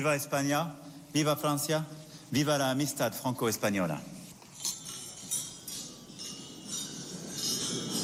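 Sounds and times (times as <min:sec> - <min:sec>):
speech: 0:00.0 - 0:04.2
wine glasses clinking in a toast at a gala dinner: 0:04.6 - 0:08.0.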